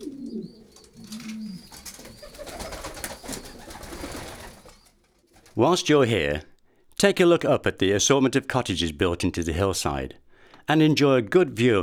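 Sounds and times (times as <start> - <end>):
faint chirps high above: 0.0 - 5.0
pigeons cooing: 0.0 - 5.5
steady outdoor rustling: 0.0 - 6.9
speech: 5.6 - 11.8.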